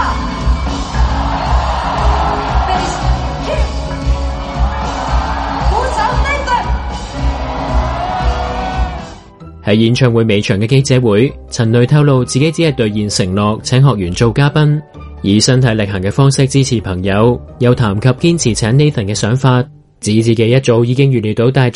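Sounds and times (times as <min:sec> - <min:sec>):
large concert crowd cheering and whooping: 0:00.1 - 0:09.3
speech: 0:09.7 - 0:21.7.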